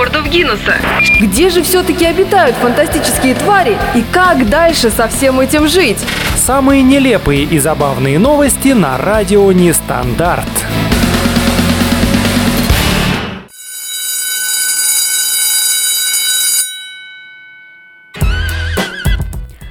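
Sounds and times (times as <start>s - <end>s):
busy music: 0.0s - 13.2s, 18.2s - 19.6s
speech: 0.3s - 10.8s
school bell ringing: 13.5s - 18.2s.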